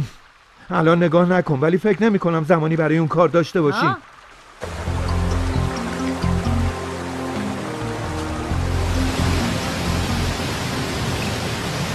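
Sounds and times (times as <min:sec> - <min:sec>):
speech: 0:00.7 - 0:04.8
river water rushing with a deep rumbling undertone: 0:03.7 - 0:11.9.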